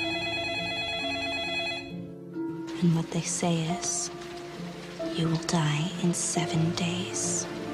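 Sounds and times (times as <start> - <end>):
telephone ringing with trilling electronic tone: 0.0 - 2.2
speech: 2.8 - 4.2, 5.2 - 7.6.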